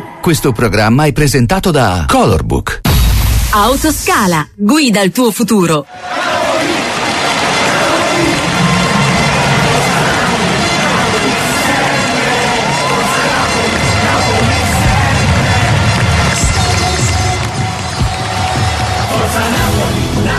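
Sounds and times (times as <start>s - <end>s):
speech: 0.2s - 2.9s, 3.5s - 6.4s
large crowd of football fans roaring and shouting: 5.9s - 20.3s.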